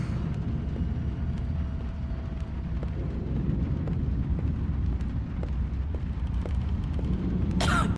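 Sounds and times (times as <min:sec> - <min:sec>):
enemy walking footsteps: 0:00.1 - 0:07.6
enemy coughing: 0:07.6 - 0:07.9.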